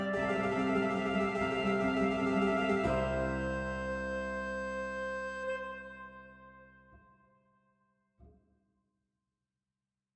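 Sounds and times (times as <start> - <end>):
clavichord accompaniment: 0.2 - 5.6.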